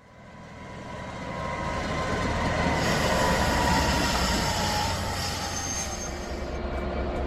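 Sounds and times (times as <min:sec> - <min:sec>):
heavy freight train rumbling past into a yard: 0:00.0 - 0:07.2
freight train wheels squealing and clattering: 0:02.7 - 0:06.5.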